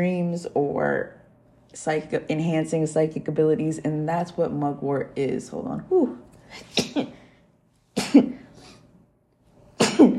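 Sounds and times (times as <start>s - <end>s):
speech: 0.0s - 7.2s, 8.1s - 8.4s
person sneezing: 6.5s - 7.2s, 8.0s - 8.8s, 9.8s - 10.1s.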